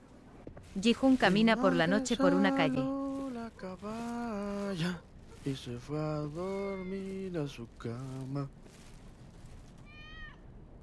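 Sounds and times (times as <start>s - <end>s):
steady low rumbling background: 0.0s - 10.8s
speech: 0.7s - 8.8s
short high-pitched kitten meow: 9.8s - 10.4s.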